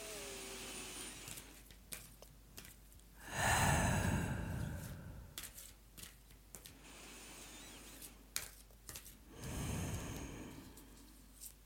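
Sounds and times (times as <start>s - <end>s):
deep breath: 3.2s - 5.4s, 9.3s - 11.2s.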